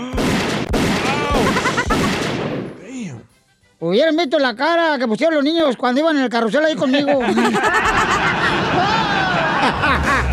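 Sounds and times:
rapid bursts of gunfire: 0.1s - 2.8s
laughter: 1.0s - 2.2s, 6.6s - 10.3s
speech: 3.8s - 8.2s, 9.7s - 10.3s.

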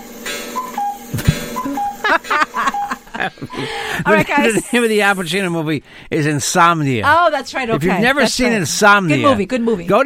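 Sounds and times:
countdown clock ticking: 0.0s - 3.7s
short tonal beeps: 0.6s - 3.8s
laughter: 1.2s - 5.3s
speech: 2.1s - 10.0s.

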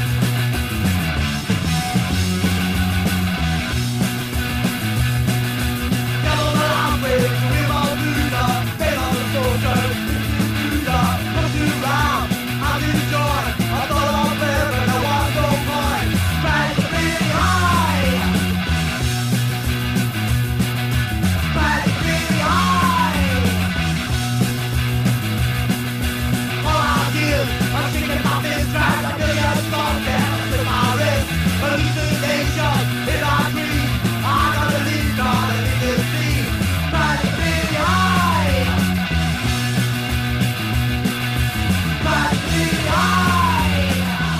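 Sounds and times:
driving distorted guitars: 0.0s - 44.3s
early Manchester punk rock song: 0.0s - 44.3s
shouted strained vocals: 6.2s - 18.6s, 21.5s - 23.7s, 26.6s - 39.0s, 41.9s - 44.3s.

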